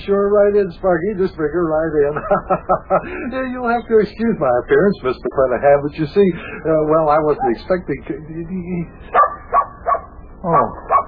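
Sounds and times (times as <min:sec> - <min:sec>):
speech: 0:00.0 - 0:09.4, 0:10.4 - 0:11.0
laughter: 0:01.0 - 0:08.2
dog barking in short sharp yaps: 0:09.1 - 0:11.0.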